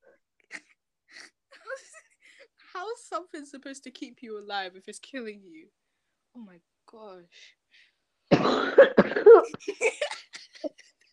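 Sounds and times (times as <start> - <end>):
person laughing: 0.5 - 2.2, 9.3 - 11.0
speech: 3.1 - 7.6, 8.5 - 10.8
harsh coughing fit: 8.3 - 10.5.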